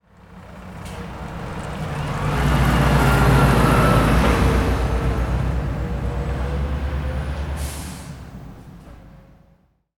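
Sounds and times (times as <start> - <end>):
truck turning at intersection: 0.0 - 9.7.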